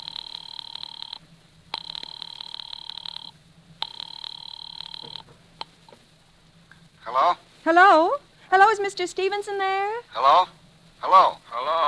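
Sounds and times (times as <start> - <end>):
telephone ringing over a phone line: 0.0 - 5.3
speech: 7.1 - 11.8.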